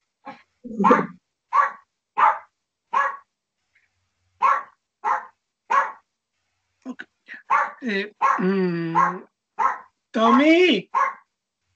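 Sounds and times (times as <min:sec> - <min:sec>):
speech: 0:00.7 - 0:01.2, 0:07.5 - 0:09.3, 0:10.1 - 0:11.0
dog barking: 0:00.8 - 0:03.3, 0:04.4 - 0:06.0, 0:07.4 - 0:08.4, 0:09.0 - 0:09.9, 0:10.8 - 0:11.3.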